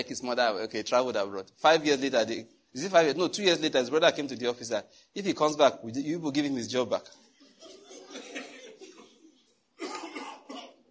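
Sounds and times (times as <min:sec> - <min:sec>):
speech: 0:00.0 - 0:08.2
audience member coughing: 0:07.6 - 0:10.9.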